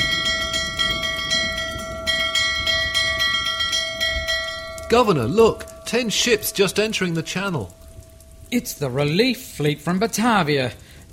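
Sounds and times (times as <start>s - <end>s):
bell ringing brightly: 0.0s - 8.2s
constant heavy rain or wind noise: 0.0s - 11.1s
speech: 4.9s - 7.8s, 8.5s - 10.8s.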